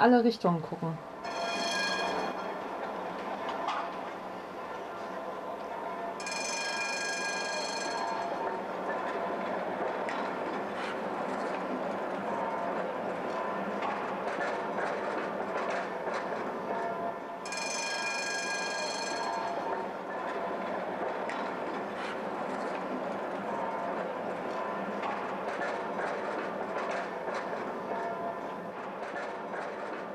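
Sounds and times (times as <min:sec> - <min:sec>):
speech: 0:00.0 - 0:01.4
tram rolling across a market square: 0:00.0 - 0:30.1
high ringing tone: 0:01.2 - 0:02.6, 0:06.2 - 0:08.6, 0:17.5 - 0:19.8.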